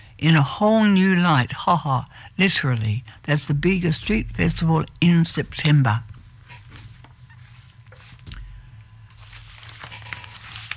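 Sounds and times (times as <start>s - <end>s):
low steady hum: 0.0s - 10.7s
speech: 0.2s - 6.1s
newspaper pages rustling and crinkling as they are handled and turned: 6.5s - 8.4s, 9.1s - 10.7s.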